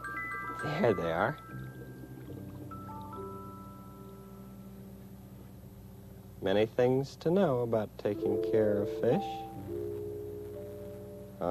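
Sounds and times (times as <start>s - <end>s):
bubbling and trickling water from an aquarium air pump: 0.0s - 4.8s
speech: 0.6s - 1.8s, 6.4s - 9.8s.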